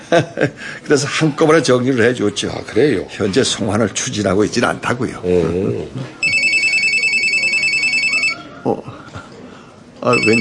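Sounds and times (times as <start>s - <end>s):
laughter: 0.0s - 0.8s
faint murmur: 0.0s - 10.3s
speech: 0.1s - 6.3s, 8.7s - 8.9s, 10.0s - 10.3s
telephone ringing with a bright electronic trill: 6.2s - 8.5s, 10.1s - 10.3s.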